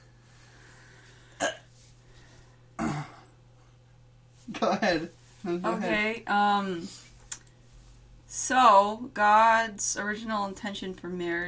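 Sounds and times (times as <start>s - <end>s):
faint steady hum: 0.0s - 11.4s
burp: 1.4s - 1.7s, 2.8s - 3.3s
speech: 4.6s - 7.1s, 8.4s - 11.4s.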